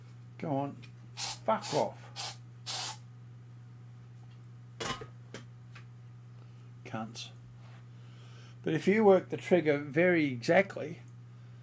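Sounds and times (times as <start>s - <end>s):
speech: 0.4s - 0.9s, 1.5s - 2.3s, 6.9s - 7.4s, 8.6s - 11.1s
aerosol fly spray hissing as someone sprays at flies: 1.2s - 3.0s.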